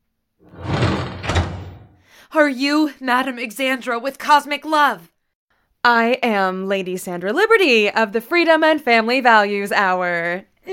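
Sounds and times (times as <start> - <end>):
door swinging or sliding shut: 0.4 - 2.0
speech: 2.3 - 5.1, 5.8 - 10.7.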